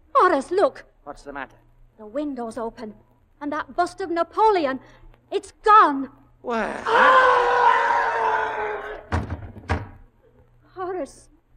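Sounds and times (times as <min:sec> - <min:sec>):
speech: 0:00.3 - 0:07.5, 0:11.0 - 0:11.3
brief wavering vocal cry: 0:06.6 - 0:09.0
heavy thuds of someone falling against a front door: 0:09.1 - 0:10.0.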